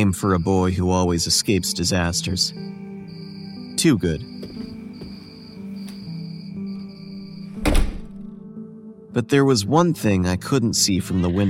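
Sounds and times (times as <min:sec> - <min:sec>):
speech: 0:00.0 - 0:02.9, 0:03.8 - 0:04.4, 0:09.2 - 0:11.4
door opening with a solid low thunk: 0:07.5 - 0:08.3.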